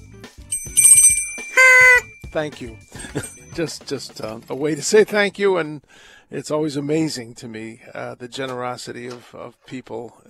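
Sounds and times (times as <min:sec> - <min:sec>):
small bell shaken and ringing: 0:00.5 - 0:03.8
speech: 0:02.3 - 0:10.2.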